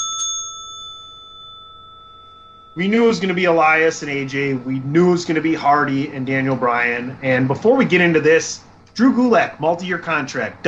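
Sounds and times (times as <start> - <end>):
single bright metallic bell ringing: 0.0 - 4.4
speech: 2.8 - 10.6.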